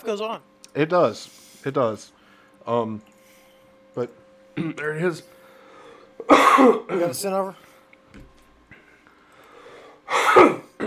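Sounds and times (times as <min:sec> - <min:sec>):
speech: 0:00.0 - 0:03.1, 0:04.0 - 0:05.4, 0:06.2 - 0:08.2, 0:10.4 - 0:10.8
faint breathing: 0:01.2 - 0:03.9, 0:05.2 - 0:06.2, 0:08.7 - 0:10.1
person coughing: 0:04.6 - 0:04.9, 0:06.2 - 0:07.2, 0:10.1 - 0:10.8.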